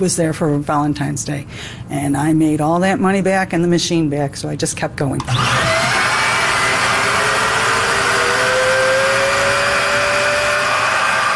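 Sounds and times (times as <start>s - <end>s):
speech: 0.0s - 5.9s
balloon stuffing machine vacuum motor drone: 5.2s - 11.3s.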